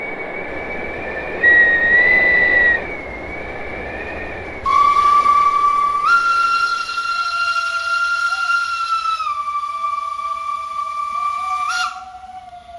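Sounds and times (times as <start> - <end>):
breath shaped into a locomotive steam whistle imitation: 0.7 - 12.7.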